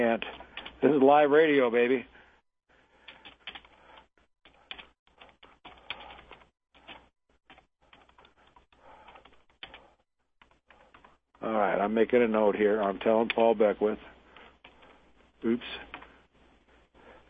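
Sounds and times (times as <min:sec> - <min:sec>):
speech: 0:00.0 - 0:02.1, 0:11.4 - 0:14.1, 0:15.4 - 0:15.9
typing on a computer keyboard: 0:03.0 - 0:11.1.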